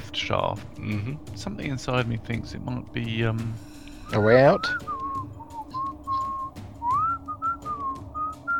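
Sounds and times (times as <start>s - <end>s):
low rumbling hum: 0.0s - 8.5s
speech: 0.2s - 5.0s
thin tuneful whistle: 3.9s - 8.5s.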